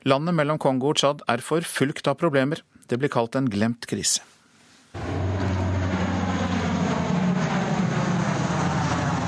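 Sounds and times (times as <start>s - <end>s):
speech: 0.0s - 5.2s
airplane engine drone flying over steppes dropping sacks of rice: 5.0s - 9.2s.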